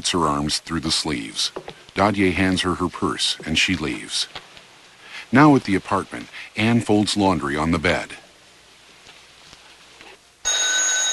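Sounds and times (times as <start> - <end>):
speech: 0.0 - 4.5, 5.3 - 8.2
telephone bell ringing: 10.4 - 11.1.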